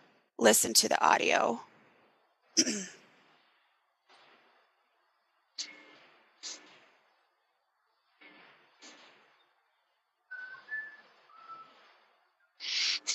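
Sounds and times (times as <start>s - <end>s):
speech: 0.4s - 1.7s, 2.6s - 3.0s
faint whistle from the back of a cave: 10.3s - 13.0s.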